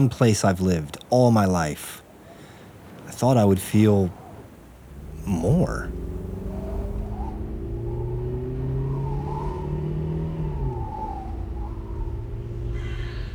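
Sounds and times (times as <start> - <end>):
speech: 0.0 - 2.0, 3.2 - 4.2, 5.2 - 6.0
continuous road rumble: 0.0 - 13.3
car engine droning on an empty desert road: 2.1 - 13.3
rough rattling of a fast car: 2.7 - 8.5.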